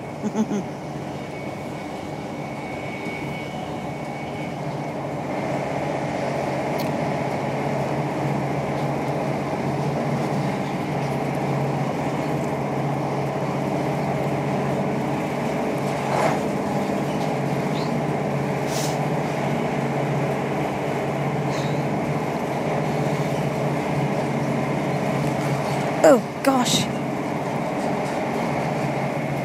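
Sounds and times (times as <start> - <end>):
old rickety slam-door train rolling along the rails: 0.0 - 29.4
speech: 0.2 - 0.8.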